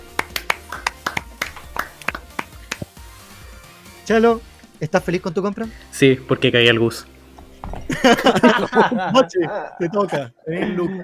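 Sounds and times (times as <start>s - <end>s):
small group applauding: 0.0s - 3.0s
speech: 4.1s - 7.1s, 8.0s - 11.0s
laughter: 7.9s - 11.0s.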